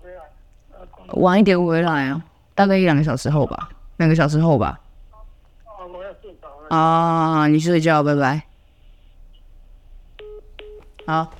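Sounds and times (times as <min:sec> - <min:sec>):
speech: 0:01.0 - 0:04.8, 0:06.7 - 0:08.5, 0:11.1 - 0:11.3
electronic telephone tones after a phone call: 0:10.2 - 0:11.3.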